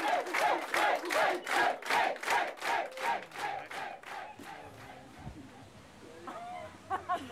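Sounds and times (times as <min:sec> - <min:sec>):
sauna crowd cheering after a Show Aufguss steam sauna performance: 0:00.0 - 0:05.1
scattered crowd murmuring: 0:00.0 - 0:06.5.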